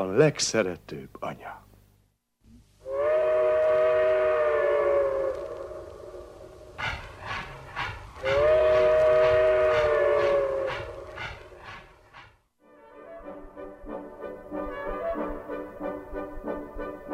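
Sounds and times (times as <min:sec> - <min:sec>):
speech: 0:00.0 - 0:01.5
steam train whistle blasts on the way from Pest to Debrecen: 0:02.8 - 0:06.2, 0:06.8 - 0:11.8
steam train from Pest to Debrecen chuffing along the rails: 0:06.8 - 0:12.4.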